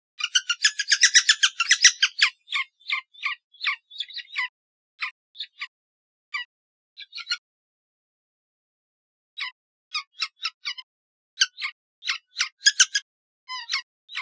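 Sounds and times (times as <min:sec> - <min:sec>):
Red-naped sapsucker giving a rapid chattering string of rough notes: 0:00.2 - 0:04.3
Red-naped sapsucker isolated squeaky calls: 0:00.2 - 0:05.7, 0:06.4 - 0:07.4, 0:09.4 - 0:14.1.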